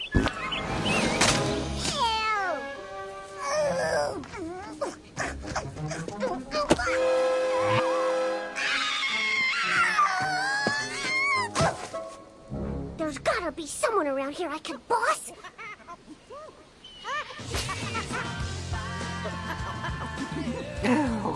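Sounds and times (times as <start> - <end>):
shrill bird chirping: 0.0 - 1.3, 16.8 - 17.1
music: 0.3 - 13.6, 17.4 - 21.3
speech: 14.4 - 15.4
laughter: 17.1 - 18.5, 19.2 - 21.3.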